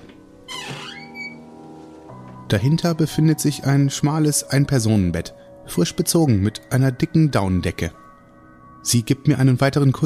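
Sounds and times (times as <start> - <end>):
old wooden staircase creaking as people climb: 0.0 - 2.5
speech: 2.5 - 8.0, 8.8 - 10.0.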